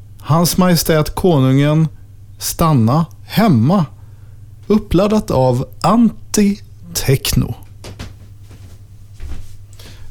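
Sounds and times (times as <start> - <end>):
steady low hum: 0.0 - 10.1
speech: 0.2 - 4.0, 4.7 - 7.6
wooden floor creaking and knocking underfoot: 7.8 - 9.6.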